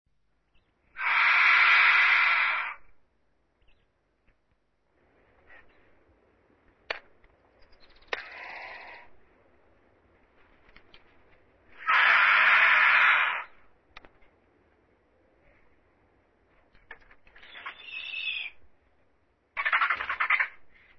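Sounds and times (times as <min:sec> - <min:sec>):
Cape vulture calling: 0:00.9 - 0:02.9, 0:07.8 - 0:09.2, 0:11.7 - 0:13.6, 0:17.4 - 0:18.6, 0:19.6 - 0:20.9.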